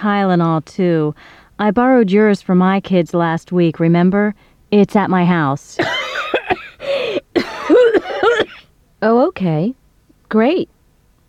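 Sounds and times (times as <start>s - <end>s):
speech: 0.0s - 6.0s, 9.0s - 10.8s
person coughing: 5.8s - 8.7s.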